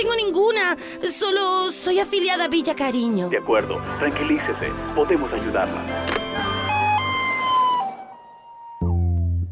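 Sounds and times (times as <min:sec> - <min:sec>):
speech: 0:00.0 - 0:06.4
ambulance siren: 0:04.4 - 0:09.4.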